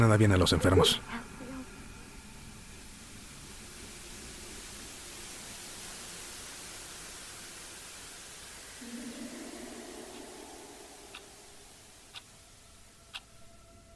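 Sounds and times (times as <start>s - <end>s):
speech: 0.0s - 1.3s
television static hiss: 0.0s - 13.4s
faint low rumble: 8.8s - 13.9s.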